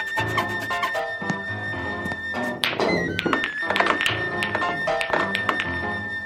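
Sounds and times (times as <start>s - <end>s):
steady music: 0.0s - 6.2s
pool cue striking and billiard balls breaking apart in straight pool: 2.1s - 5.9s.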